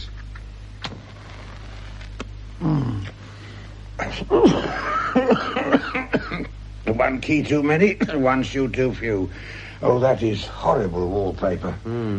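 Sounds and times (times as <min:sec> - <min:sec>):
speech: 0:02.6 - 0:03.2, 0:04.1 - 0:12.1
person coughing with rough raspy coughs: 0:04.3 - 0:06.5.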